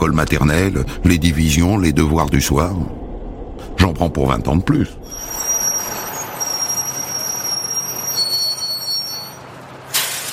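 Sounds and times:
speech: 0.0 - 3.0, 3.8 - 5.3
train rolling into a busy railway station platform: 0.0 - 10.3
train wheels squealing: 5.0 - 9.5.

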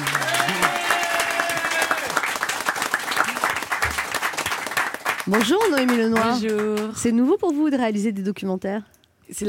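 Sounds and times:
studio audience applause on a French television talk show: 0.0 - 7.0
speech: 5.3 - 9.4.

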